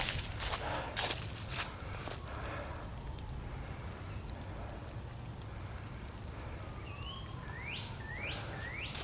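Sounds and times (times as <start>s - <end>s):
crunchy footsteps: 0.0s - 3.3s, 8.6s - 9.0s
light drizzle pattering on the forest canopy on a warm day: 0.0s - 9.0s
bird chirping quick rising calls: 5.8s - 9.0s.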